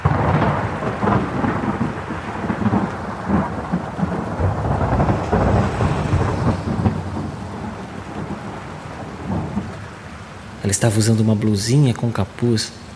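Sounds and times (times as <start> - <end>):
deep rumbling thunder: 0.0 - 10.8
heavy rain pouring down in a thunderstorm: 0.0 - 12.9
speech: 10.7 - 12.8.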